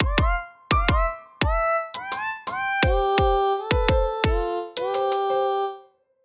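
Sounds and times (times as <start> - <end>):
drum mix: 0.0 - 5.2.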